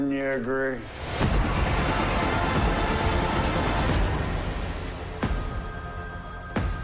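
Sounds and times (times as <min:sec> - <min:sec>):
speech: 0:00.1 - 0:01.4
steady rushing noise: 0:00.8 - 0:05.2
telephone ringing: 0:05.3 - 0:06.8.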